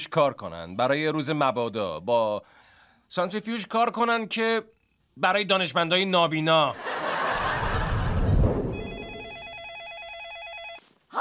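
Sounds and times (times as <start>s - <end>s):
speech: 0.0s - 7.1s
laughter: 6.8s - 8.4s
telephone ringing with a warbling electronic trill: 8.7s - 10.9s.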